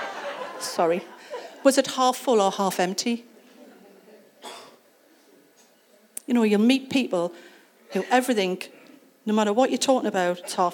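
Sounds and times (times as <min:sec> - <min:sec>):
laughter: 0:00.0 - 0:01.7
speech: 0:00.7 - 0:03.3, 0:06.3 - 0:10.7
faint murmuring background: 0:03.2 - 0:06.3
short breathy cough: 0:04.4 - 0:04.8.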